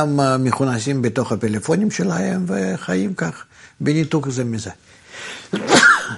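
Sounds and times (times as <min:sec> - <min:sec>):
speech: 0:00.0 - 0:05.8
person sneezing after a short intake of breath: 0:05.5 - 0:06.1.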